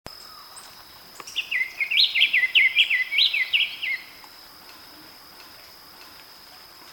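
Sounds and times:
Diademed Tanager (Stephanophorus diadematus) calling: 0.1s - 6.2s.

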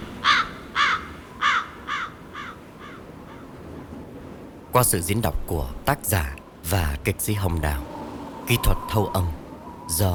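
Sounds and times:
faint hiss: 0.0s - 10.1s
crows cawing: 0.2s - 3.6s
speech: 4.8s - 7.9s, 8.5s - 10.1s.

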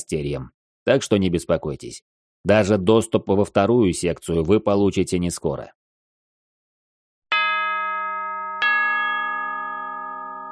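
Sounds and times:
speech: 0.0s - 5.8s
bell ringing loudly: 7.3s - 10.4s.

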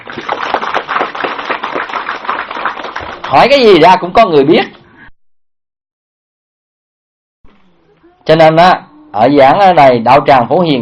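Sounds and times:
audience applauding during a Buddhist dharma talk: 0.0s - 3.6s
speech: 3.3s - 4.8s, 8.3s - 10.8s.

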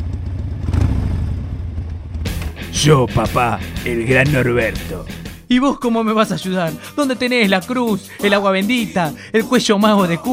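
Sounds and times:
Harley-Davidson motorcycle engine revving: 0.0s - 5.0s
speech: 2.8s - 10.3s.

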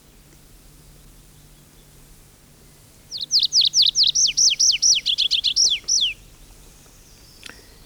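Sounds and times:
Tree Pipit singing in pine forest in Finland: 3.0s - 7.8s.

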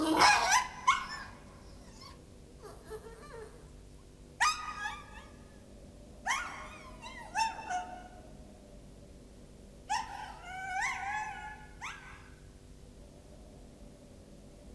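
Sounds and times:
small dog whimpering and yelping: 0.0s - 3.7s, 4.4s - 5.4s, 6.3s - 8.0s, 9.9s - 12.2s.

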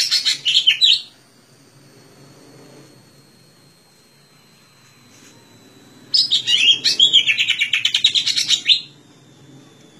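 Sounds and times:
Greater green leafbird song of rich slurred whistles and chattering notes: 0.0s - 1.2s, 6.1s - 9.0s.

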